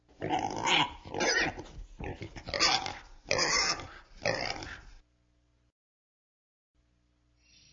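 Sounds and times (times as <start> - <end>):
raspy pig oinks and squeals: 0.2 - 5.0.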